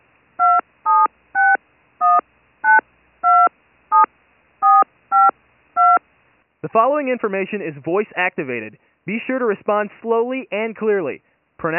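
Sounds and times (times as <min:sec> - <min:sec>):
telephone keypad tones entering a phone number: 0:00.4 - 0:06.0
speech: 0:06.6 - 0:11.7.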